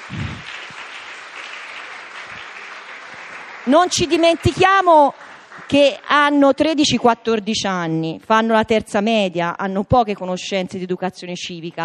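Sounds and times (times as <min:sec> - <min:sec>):
applause from a group of young students: 0:00.0 - 0:06.7
speech: 0:03.7 - 0:11.8.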